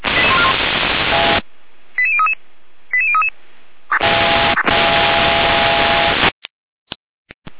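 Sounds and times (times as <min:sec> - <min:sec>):
harsh radio static: 0:00.0 - 0:01.4, 0:03.9 - 0:06.4.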